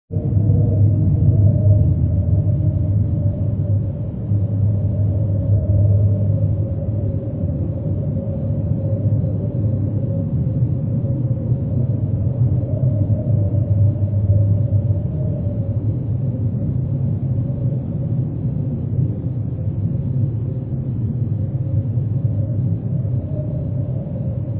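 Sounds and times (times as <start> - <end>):
wind in a cave: 0.1 - 24.5.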